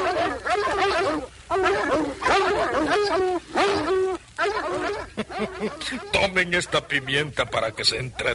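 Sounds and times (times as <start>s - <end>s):
dogs barking and yelping with howl-like cries: 0.0s - 7.6s
speech: 5.6s - 8.3s.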